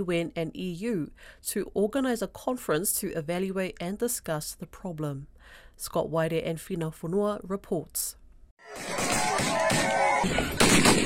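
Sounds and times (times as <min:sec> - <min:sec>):
speech: 0:00.0 - 0:11.0
gunfire from gunmen during an armed ambush amid a tribal conflict: 0:08.7 - 0:11.0
shouting voices: 0:08.8 - 0:10.6.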